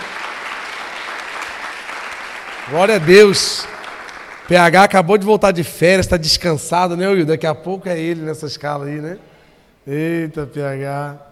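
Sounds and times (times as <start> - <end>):
audience applauding: 0.0 - 5.2
speech: 2.7 - 3.7, 4.5 - 11.3.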